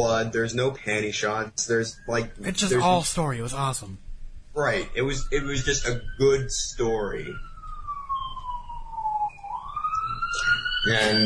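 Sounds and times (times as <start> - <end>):
speech: 0.0 - 4.0, 4.6 - 7.5, 10.8 - 11.2
ambulance siren wailing: 5.0 - 11.2.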